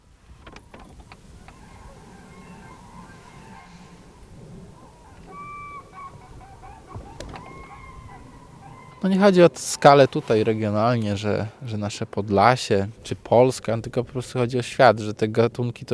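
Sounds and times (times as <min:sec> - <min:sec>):
outdoor noise: 0:00.0 - 0:15.9
flock of cranes calling overhead: 0:00.6 - 0:10.9
speech: 0:09.0 - 0:15.9.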